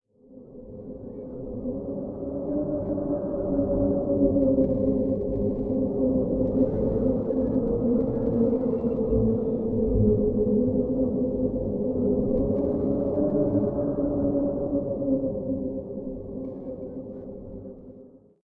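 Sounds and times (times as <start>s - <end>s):
hollow temple ambience: 0.4s - 18.1s.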